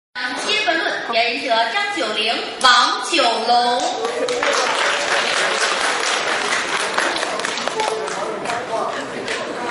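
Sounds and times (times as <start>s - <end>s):
speech: 1.1s - 6.7s
faint crowd voices: 3.4s - 9.6s
large audience applause: 4.0s - 9.6s.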